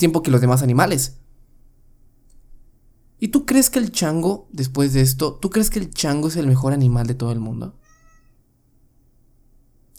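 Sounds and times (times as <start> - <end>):
speech: 0.0 - 1.3, 3.2 - 7.8
low steady hum: 0.0 - 9.9
cat meowing: 7.8 - 8.5.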